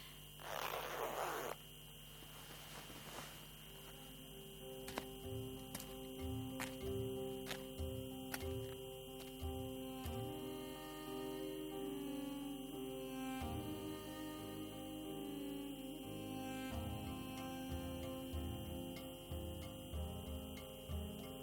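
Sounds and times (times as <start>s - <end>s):
low hum: 0.0s - 21.4s
hood zipper pulled up: 0.4s - 1.6s.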